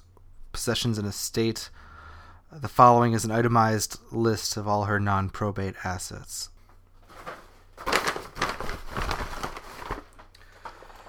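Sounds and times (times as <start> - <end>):
speech: 0.6 - 1.9, 2.5 - 6.5
old brown paper bag full of notes and receipts crinkling: 7.0 - 11.0.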